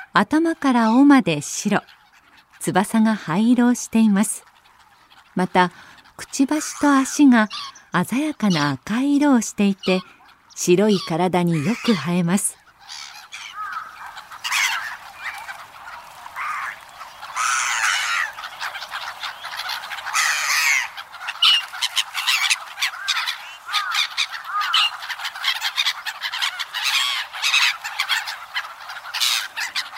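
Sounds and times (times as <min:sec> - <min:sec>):
flock of black-headed gulls calling at Toneri Park in Tokyo Japan: 0:00.0 - 0:29.9
speech: 0:00.2 - 0:02.0, 0:02.6 - 0:04.5, 0:05.4 - 0:12.6.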